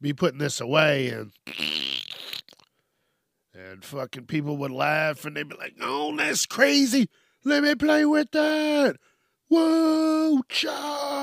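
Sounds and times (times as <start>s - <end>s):
speech: 0.0s - 1.9s, 3.6s - 11.0s
person vocally imitating fart sound of putty put into its container: 1.4s - 2.7s.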